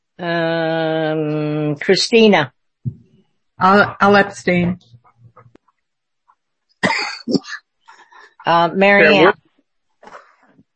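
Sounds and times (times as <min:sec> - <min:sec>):
speech: 0:00.2 - 0:00.5, 0:01.8 - 0:02.6, 0:03.6 - 0:04.9, 0:08.5 - 0:09.4
harsh loud coughs: 0:06.8 - 0:07.6.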